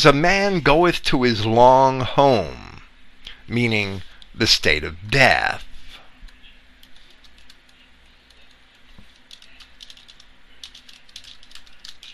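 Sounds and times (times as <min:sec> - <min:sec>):
speech: 0:00.0 - 0:02.7, 0:03.5 - 0:05.7
low hum: 0:00.0 - 0:12.1
typing on a computer keyboard: 0:06.8 - 0:12.1.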